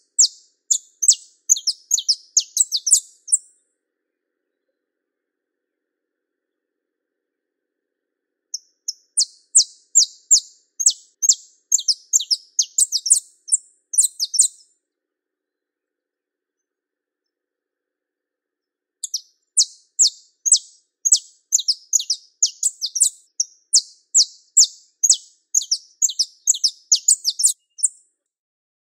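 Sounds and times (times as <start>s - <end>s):
pure-bred Belgian canary singing: 0.0s - 3.5s, 8.5s - 14.7s, 19.0s - 28.0s.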